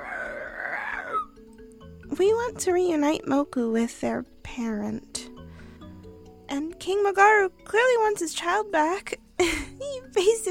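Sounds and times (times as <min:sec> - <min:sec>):
person imitating the roar of a small monster child: 0:00.0 - 0:01.3
speech: 0:02.2 - 0:05.2, 0:06.8 - 0:09.6, 0:10.2 - 0:10.4.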